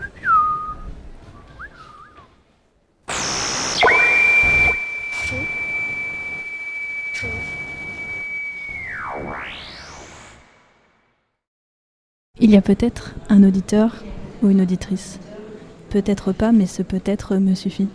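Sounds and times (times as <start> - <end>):
long steady high whistle with swooping glides: 3.1 - 10.7
person whistling phrases with sliding pitches: 5.0 - 9.0
speech: 12.4 - 15.3, 15.9 - 17.9.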